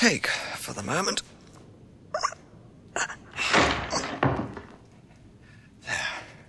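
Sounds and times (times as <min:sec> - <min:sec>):
speech: 0:00.0 - 0:01.4
door being forced open with a crowbar: 0:03.4 - 0:04.9
heavy thud: 0:03.4 - 0:04.9.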